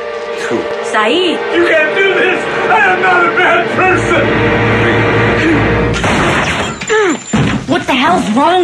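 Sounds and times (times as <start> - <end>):
dense loud rumbling noise: 0.0 - 6.4
speech: 0.5 - 6.4, 7.0 - 8.6
gunshot: 6.0 - 6.7.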